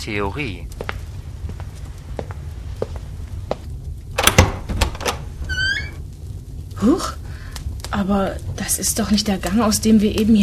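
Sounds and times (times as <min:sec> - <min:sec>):
speech: 0:00.0 - 0:00.9, 0:06.8 - 0:07.2, 0:07.9 - 0:10.4
low rumble: 0:00.0 - 0:10.4
door swinging open with creaking hinges: 0:04.2 - 0:06.0.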